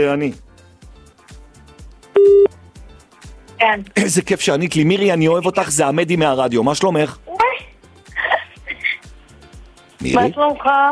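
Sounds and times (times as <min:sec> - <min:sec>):
speech: 0:00.0 - 0:00.5, 0:03.6 - 0:07.2, 0:10.0 - 0:10.9
telephone tone while dialing a number: 0:02.2 - 0:02.5.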